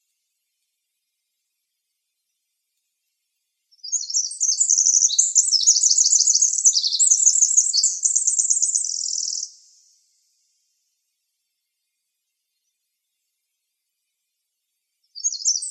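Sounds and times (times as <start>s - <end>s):
winter wren singing in Arizona: 3.7s - 10.1s, 15.1s - 15.6s.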